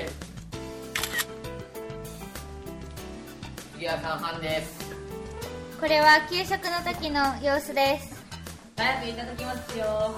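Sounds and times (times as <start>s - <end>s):
steady music: 0.0s - 10.1s
camera shutter taking a group photo: 0.9s - 1.3s
speech: 3.8s - 4.9s, 5.8s - 8.1s, 8.8s - 10.1s.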